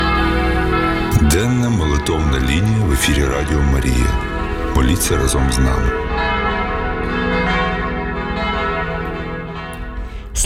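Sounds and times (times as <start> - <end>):
church bells pealing: 0.0 - 10.4
speech: 2.1 - 6.0.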